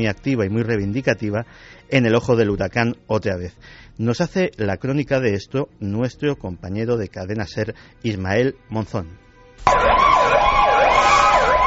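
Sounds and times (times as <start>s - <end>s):
speech: 0.0s - 10.0s
ambulance siren wailing: 9.6s - 11.6s.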